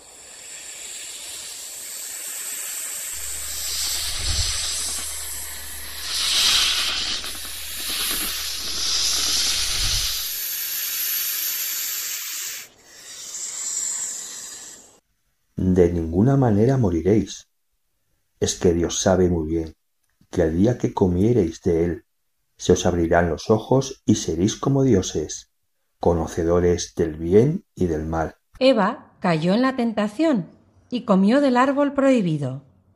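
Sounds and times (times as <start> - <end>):
snake hissing: 0.0 - 15.0
low rumbling drone: 3.0 - 10.4
speech: 15.8 - 17.5, 18.4 - 22.0, 22.6 - 32.7.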